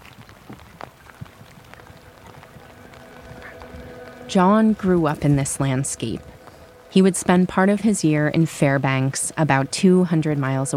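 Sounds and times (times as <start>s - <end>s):
sharp rain drips and taps: 0.0s - 4.3s
cold rain hissing across a surface: 0.0s - 10.7s
speech: 4.3s - 10.7s.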